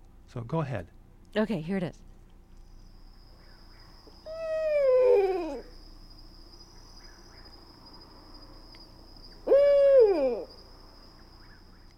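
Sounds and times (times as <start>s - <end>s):
speech: 0.3s - 2.1s
steady high insect whine: 2.4s - 11.9s
female and male owl hooting: 3.4s - 5.8s, 9.3s - 11.9s.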